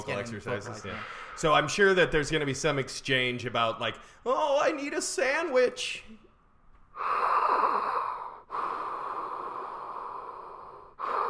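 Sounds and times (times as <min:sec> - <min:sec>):
speech: 0:00.0 - 0:06.2, 0:07.0 - 0:08.0
person breathing heavily and theatrically imitating a ghost: 0:00.8 - 0:01.6, 0:06.9 - 0:11.2.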